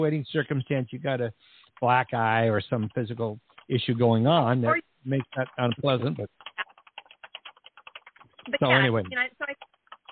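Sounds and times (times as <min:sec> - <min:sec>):
speech: 0:00.0 - 0:06.7, 0:08.5 - 0:09.7
keyboard typing: 0:02.7 - 0:03.8, 0:05.1 - 0:10.1.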